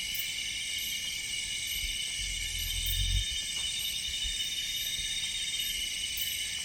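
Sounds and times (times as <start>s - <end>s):
dense chorus of high insect trilling and pulsing in jungle: 0.1s - 6.4s
faint low rumbles: 1.8s - 3.5s.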